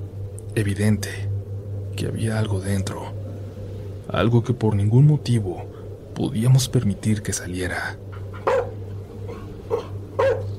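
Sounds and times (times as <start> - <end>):
steady low hum: 0.0 - 10.5
speech: 0.5 - 1.3, 2.0 - 3.2, 4.1 - 8.0
dog barking aggressively at something upstairs: 8.3 - 10.5.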